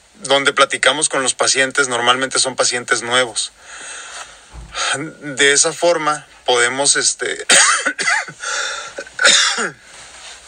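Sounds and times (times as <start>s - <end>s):
speech: 0.2s - 4.0s, 4.8s - 8.2s, 9.3s - 9.9s
person coughing: 7.5s - 8.4s, 9.0s - 9.8s.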